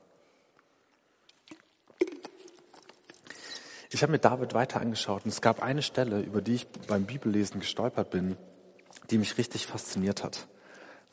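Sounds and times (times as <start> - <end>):
person sipping water: 0.3 - 3.9, 8.8 - 9.1
faint gulping: 1.0 - 3.9
speech: 4.0 - 11.1.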